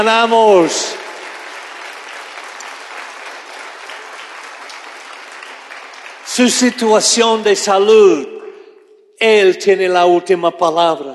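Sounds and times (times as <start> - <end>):
speech: 0.0 - 1.0, 6.4 - 8.4, 9.2 - 11.1
large audience applauding: 0.0 - 7.6.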